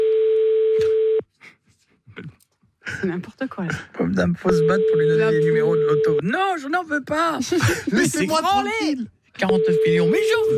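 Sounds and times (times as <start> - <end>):
telephone line tone when calling a landline: 0.0 - 1.2, 4.5 - 6.2, 9.5 - 10.5
speech: 3.0 - 10.5.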